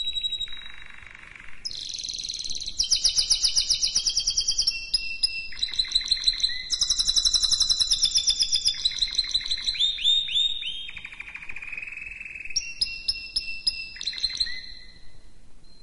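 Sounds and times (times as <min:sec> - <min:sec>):
canary singing trills: 0:00.0 - 0:15.8.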